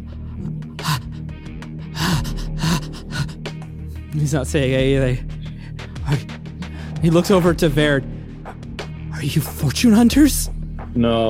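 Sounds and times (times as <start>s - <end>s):
voice imitating an old man wheezing: 0.0s - 3.5s
speech: 4.1s - 5.3s, 6.1s - 6.3s, 7.0s - 8.1s, 9.2s - 11.2s.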